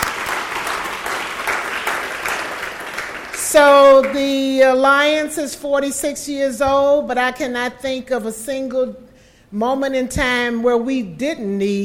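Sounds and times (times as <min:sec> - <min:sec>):
applause from a sizable crowd at an awards evening: 0:00.0 - 0:03.4
speech: 0:03.5 - 0:11.8.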